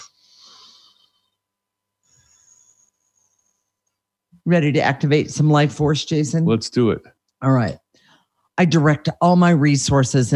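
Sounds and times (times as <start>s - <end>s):
deep breath drawn in and let out: 0.0s - 1.4s, 2.0s - 3.7s
speech: 4.4s - 7.8s, 8.6s - 10.3s.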